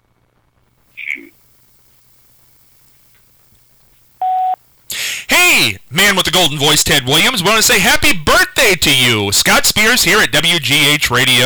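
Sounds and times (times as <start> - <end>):
brief electronic chirp on a telephone line: 1.0 - 7.8
speech: 5.6 - 11.4.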